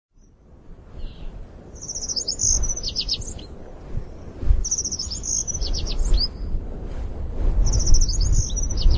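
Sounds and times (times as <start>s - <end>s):
low wind noise: 0.2s - 8.9s
Helan Mountain accentor twittering: 1.0s - 3.5s, 4.6s - 6.5s, 7.7s - 8.9s.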